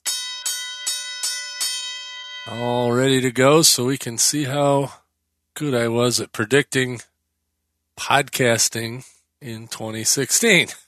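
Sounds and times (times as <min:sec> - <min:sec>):
bell strikes with shimmering metallic tone: 0:00.0 - 0:02.8
speech: 0:02.5 - 0:05.0, 0:05.6 - 0:07.1, 0:08.0 - 0:10.8.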